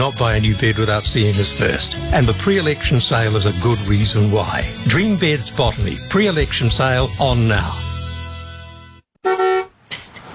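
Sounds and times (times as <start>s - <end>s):
speech: 0.0s - 7.8s
car horns honking: 9.2s - 9.8s.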